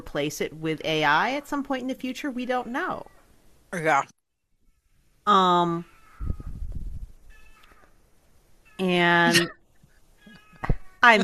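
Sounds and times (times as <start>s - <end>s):
speech: 0.0s - 3.1s, 3.7s - 4.2s, 5.3s - 5.9s, 8.8s - 9.6s, 10.6s - 11.2s
cat meowing: 5.8s - 6.6s, 10.2s - 11.2s.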